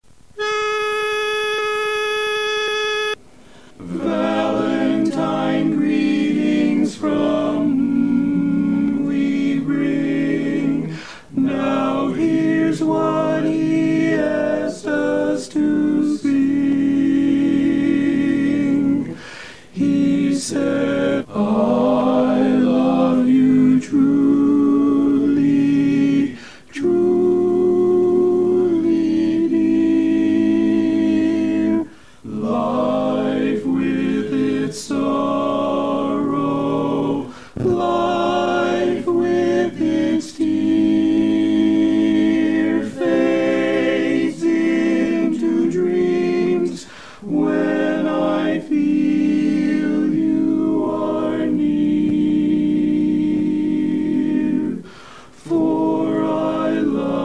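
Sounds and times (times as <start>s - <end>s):
barbershop quartet tenor singing greetings: 0.4s - 57.2s.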